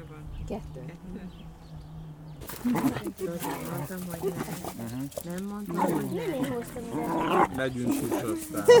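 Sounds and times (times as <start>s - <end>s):
speech: 0.5s - 1.8s, 2.4s - 8.7s
dogs growling and snarling while playing: 2.4s - 8.7s.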